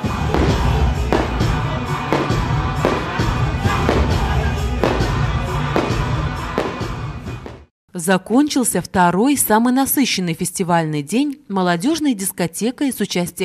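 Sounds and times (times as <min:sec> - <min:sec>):
outdoor crowd noise: 0:00.0 - 0:07.5
festive fireworks bursting at an international folk music festival: 0:00.0 - 0:07.7
speech: 0:08.0 - 0:13.4.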